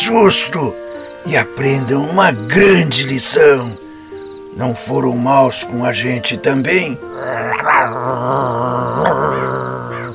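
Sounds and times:
speech: 0:00.0 - 0:03.9, 0:04.6 - 0:09.7
dog growling: 0:07.0 - 0:10.1.

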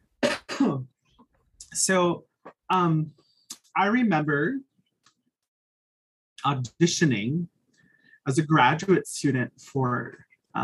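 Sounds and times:
harsh voiced throat clearing: 0:00.2 - 0:00.9
speech: 0:01.8 - 0:03.2, 0:03.8 - 0:04.7, 0:06.4 - 0:07.5, 0:08.2 - 0:10.6.

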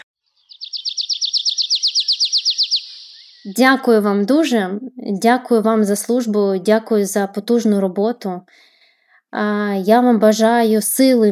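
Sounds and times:
nightingale singing: 0:00.3 - 0:04.0
speech: 0:03.4 - 0:08.7, 0:09.3 - 0:11.3.

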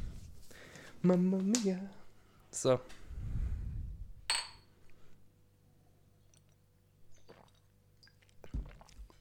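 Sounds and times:
speech: 0:01.0 - 0:03.4
low rumbling background: 0:03.0 - 0:04.3
glass bottles clinking against a hard surface as they are set down: 0:04.3 - 0:04.7.

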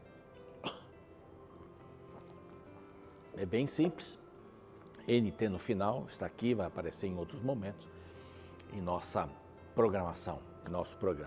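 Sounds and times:
person sipping a drink: 0:00.4 - 0:03.4
speech: 0:03.4 - 0:04.2, 0:05.0 - 0:08.1, 0:08.7 - 0:11.2.

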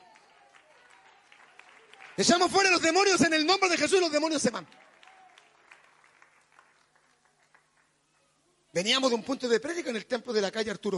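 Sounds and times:
congregation applause: 0:00.0 - 0:08.3
speech: 0:02.2 - 0:04.9, 0:08.8 - 0:10.9.

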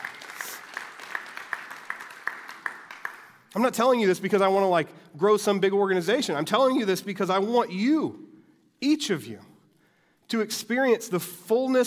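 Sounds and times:
crowd applauding: 0:00.0 - 0:03.6
speech: 0:03.6 - 0:08.2, 0:08.8 - 0:09.5, 0:10.3 - 0:11.8.

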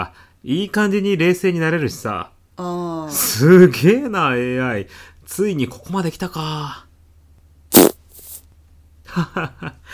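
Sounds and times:
speech: 0:00.0 - 0:06.8, 0:09.2 - 0:09.9
loud short fart: 0:07.7 - 0:08.4.

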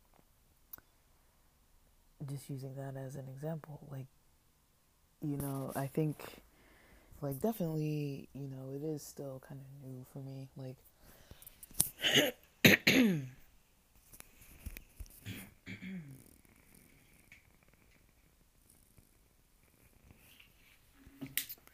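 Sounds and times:
speech: 0:02.2 - 0:04.2, 0:05.2 - 0:06.5, 0:07.2 - 0:10.9, 0:12.0 - 0:12.4
throat clearing into a microphone: 0:12.0 - 0:13.4, 0:15.2 - 0:16.2.

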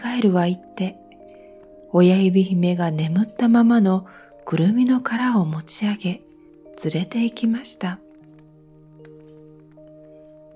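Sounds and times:
speech: 0:00.1 - 0:01.0, 0:01.9 - 0:08.0
campfire crackling: 0:01.0 - 0:10.5.

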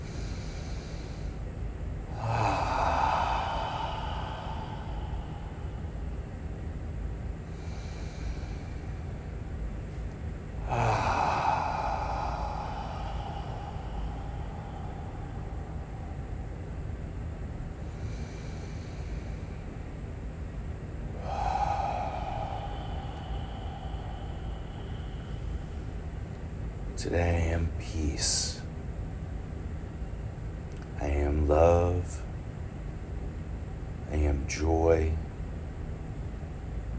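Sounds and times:
slow deep breathing during a guided meditation: 0:00.0 - 0:28.7
low steady hum: 0:00.0 - 0:36.9
speech: 0:27.0 - 0:28.5.

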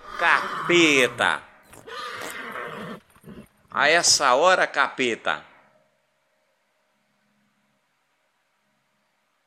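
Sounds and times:
horse neighing: 0:00.0 - 0:03.6
speech: 0:00.2 - 0:02.0, 0:03.7 - 0:05.5.

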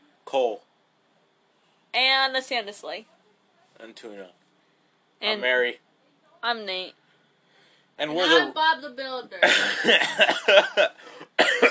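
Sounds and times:
speech: 0:00.3 - 0:00.7, 0:02.0 - 0:03.2, 0:03.8 - 0:04.4, 0:05.2 - 0:05.8, 0:06.4 - 0:07.0, 0:08.0 - 0:11.6
person coughing: 0:09.4 - 0:11.6.

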